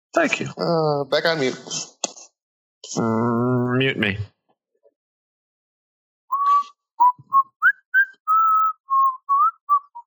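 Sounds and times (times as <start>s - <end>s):
speech: 0.2s - 1.9s, 2.9s - 4.4s
person whistling a short tune: 6.3s - 10.0s.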